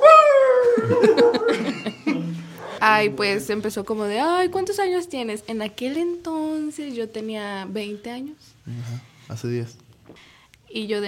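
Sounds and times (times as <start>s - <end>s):
dog howling: 0.0s - 1.6s
laughter: 0.7s - 2.8s
speech: 0.8s - 2.0s, 2.8s - 11.0s.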